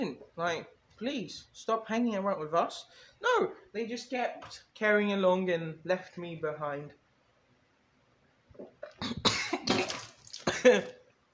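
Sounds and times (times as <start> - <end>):
speech: 0.0 - 7.0, 10.6 - 11.0
person coughing and sputtering after choking on water: 8.6 - 11.0.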